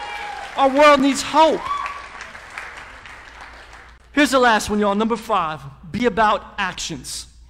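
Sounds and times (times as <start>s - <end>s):
bright whoops from the crowd: 0.0s - 0.6s, 1.5s - 2.3s
crowd in a building clapping and cheering: 0.0s - 4.1s
speech: 0.6s - 1.8s, 4.2s - 7.3s.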